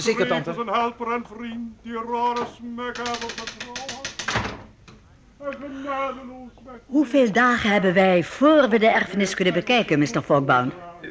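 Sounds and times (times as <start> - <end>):
speech: 0.0 - 4.0, 5.4 - 11.0
door shutting with a wooden bang: 2.4 - 4.8.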